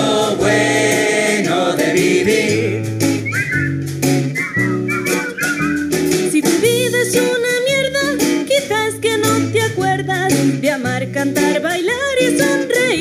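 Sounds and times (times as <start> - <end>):
bouncy instrumental backing with bass and percussion: 0.0 - 12.9
bright whistled melody: 3.0 - 7.0.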